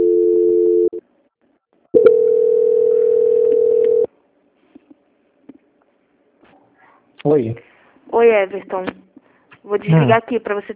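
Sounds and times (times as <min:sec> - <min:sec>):
telephone line tones during call transfer: 0:00.0 - 0:01.0, 0:02.0 - 0:04.1
speech: 0:07.3 - 0:08.9, 0:09.6 - 0:10.7.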